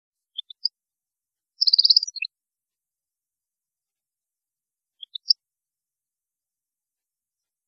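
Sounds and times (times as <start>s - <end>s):
European goldfinch giving high thin notes and fast twittering: 0.4s - 0.7s, 1.6s - 2.3s, 5.0s - 5.4s.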